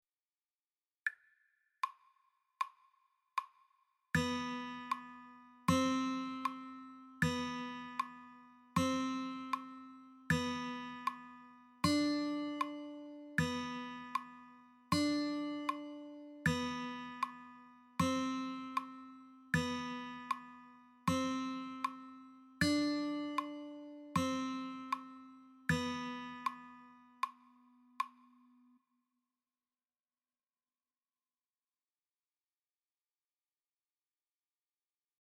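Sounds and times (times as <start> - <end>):
guitar notes B C D on the 2nd string: 4.2 - 27.3.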